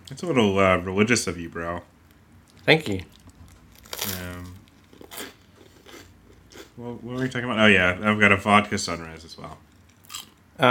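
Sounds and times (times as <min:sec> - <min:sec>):
speech: 0:00.1 - 0:01.9, 0:02.6 - 0:03.2, 0:06.8 - 0:09.7
harvest cheddar flavor Sun Chips being chewed: 0:02.4 - 0:06.8, 0:09.8 - 0:10.4.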